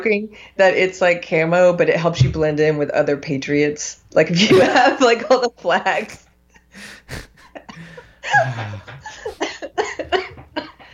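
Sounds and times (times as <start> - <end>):
speech: 0.0 - 9.6
person coughing harshly in a coughing fit: 4.5 - 5.2, 5.9 - 6.2, 6.8 - 9.6
laughter: 4.5 - 6.2, 7.2 - 10.4.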